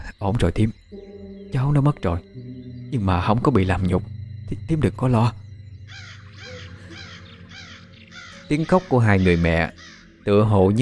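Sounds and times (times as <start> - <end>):
speech: 0.2 - 2.3, 2.9 - 6.5, 8.5 - 10.8
crows cawing in the sky: 5.8 - 10.8.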